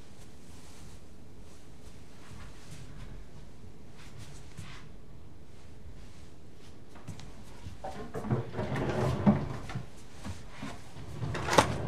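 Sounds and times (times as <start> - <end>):
drawer opened to take out rubber gloves: 7.8 - 9.9, 10.6 - 11.8.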